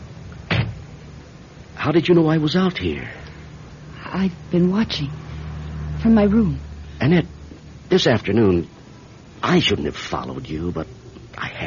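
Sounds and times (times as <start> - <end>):
quiet hum: 0.0 - 11.6
car door shutting with a solid thump: 0.5 - 0.8
speech: 1.8 - 3.2, 4.1 - 5.2, 6.0 - 8.7, 9.4 - 11.6.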